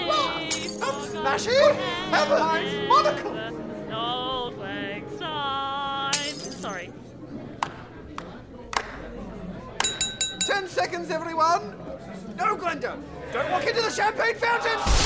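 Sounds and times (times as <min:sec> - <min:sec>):
loud crowd chatter and babble at a party: 0:00.0 - 0:15.0
glass and china smashing at a party: 0:00.5 - 0:01.2, 0:06.1 - 0:06.9
ringing, clinking glass and china shards: 0:00.5 - 0:01.2, 0:06.2 - 0:06.8.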